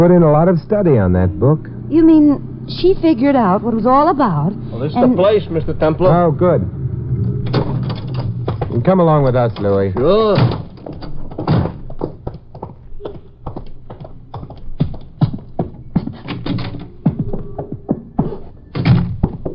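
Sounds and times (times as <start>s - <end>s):
speech: 0.0s - 7.3s, 8.7s - 10.6s
footsteps on creaky, noisy stairs: 7.3s - 19.5s.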